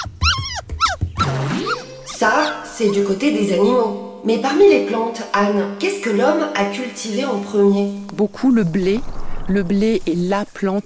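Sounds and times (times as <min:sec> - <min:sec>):
domestic cat meowing and yowling: 0:00.0 - 0:01.0
speech: 0:02.2 - 0:10.8.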